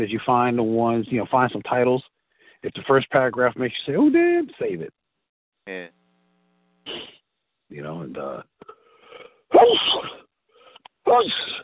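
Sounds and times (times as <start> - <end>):
speech: 0.0 - 5.0, 5.7 - 6.0, 7.7 - 8.8, 9.5 - 10.2, 11.1 - 11.6
person sneezing: 6.9 - 7.2, 9.6 - 10.3.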